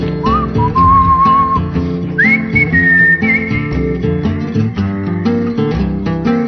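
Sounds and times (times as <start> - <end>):
loud steady instrumental music: 0.0 - 6.4
people whistling a bright melody: 0.2 - 4.0.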